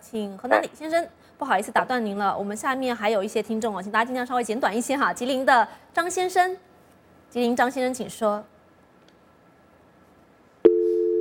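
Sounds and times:
speech: 0.1 - 6.7, 7.3 - 8.5
telephone busy tone after call drops: 10.6 - 11.2.

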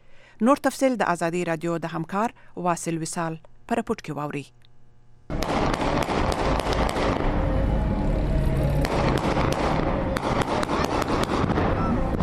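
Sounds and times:
speech: 0.4 - 4.6
celebratory aerial gunfire in Kabul city streets: 5.3 - 7.6, 8.8 - 12.2.

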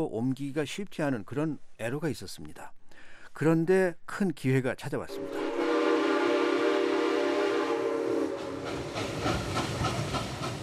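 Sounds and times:
speech: 0.0 - 2.8, 3.4 - 5.4
steam train sustained whistle-like tone: 5.1 - 9.4
steam train hissing: 5.1 - 10.6
steam train chuffing and clanking as it gets moving: 6.7 - 10.6.

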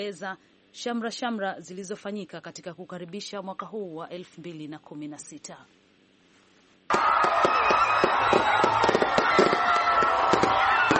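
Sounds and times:
speech: 0.0 - 5.8
fireworks crackling and popping at a New Year celebration in Kampala Uganda: 6.9 - 10.9.

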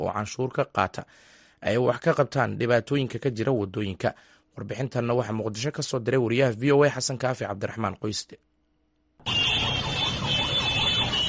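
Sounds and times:
speech: 0.0 - 8.5
vehicle horns blaring in a traffic jam on a main road in Mogadishu: 9.2 - 11.2.

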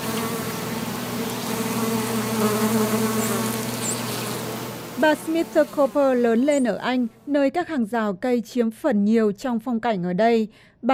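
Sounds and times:
bees buzzing: 0.0 - 7.2
speech: 2.4 - 3.6, 5.0 - 10.9.

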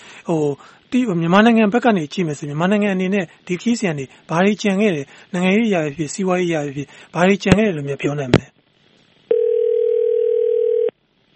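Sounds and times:
speech: 0.2 - 8.6
telephone dial tone after a phone line disconnects: 9.3 - 10.9.

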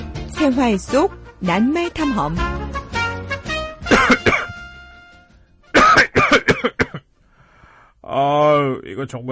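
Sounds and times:
speech: 0.4 - 2.6, 8.1 - 9.2
person clearing throat: 3.9 - 4.7, 5.7 - 7.1
person coughing: 3.9 - 4.7, 5.7 - 7.1.

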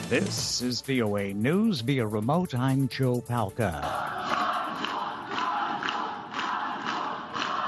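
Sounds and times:
speech: 0.1 - 4.3
crowd cheering and chanting outside a jail: 3.6 - 7.6.

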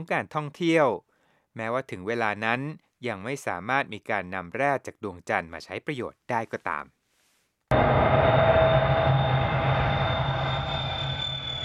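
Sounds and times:
speech: 0.0 - 7.0, 7.7 - 8.7
spaceship test flight lifting off over a California desert: 7.7 - 11.6
thin high whine: 7.7 - 11.6.

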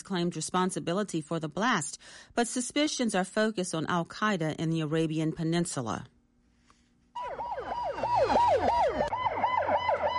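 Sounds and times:
speech: 0.1 - 6.2
ambulance sirens wailing in an up-and-down yelp: 7.2 - 10.1.

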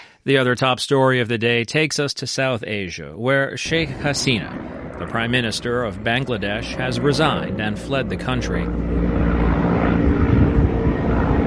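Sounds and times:
speech: 0.2 - 9.2
helicopter flying over Dhaka, Bangladesh: 3.6 - 11.4.

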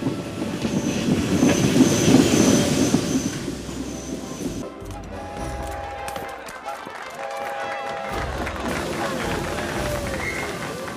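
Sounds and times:
train rumbling along rails: 0.0 - 6.1, 7.9 - 10.9
high metallic train wheel squeals: 0.4 - 4.6.

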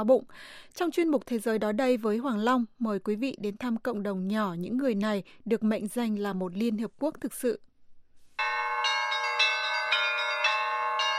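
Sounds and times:
speech: 0.0 - 7.7
Eastern Orthodox church bells ringing on an island in Antarctica: 8.4 - 11.1.

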